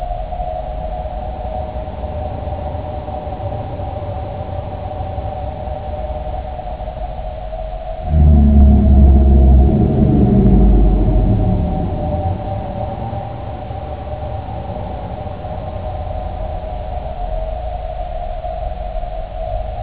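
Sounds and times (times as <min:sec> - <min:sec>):
eerie sound: 0:08.0 - 0:18.5.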